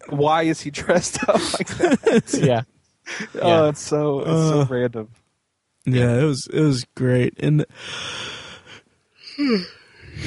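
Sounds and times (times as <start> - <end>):
speech: 0.0 - 5.2, 5.8 - 8.3, 9.4 - 10.2
laughter: 1.0 - 3.7
yawn: 9.2 - 10.2.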